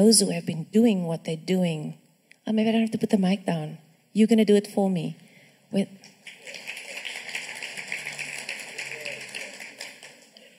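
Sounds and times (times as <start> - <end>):
speech: 0.0 - 6.6
crowd applauding: 6.1 - 10.5.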